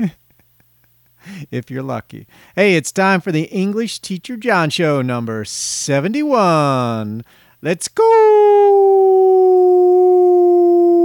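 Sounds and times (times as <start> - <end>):
speech: 0.0 - 0.2, 1.2 - 9.2
dog howling: 8.5 - 11.0.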